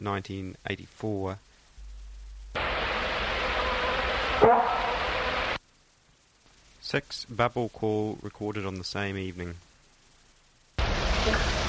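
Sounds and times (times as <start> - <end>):
speech: 0.0 - 1.5, 4.4 - 4.9, 6.9 - 9.7, 11.2 - 11.5
steady hiss from the recording: 0.0 - 11.6
deer giving a short sharp bark call: 4.4 - 5.2.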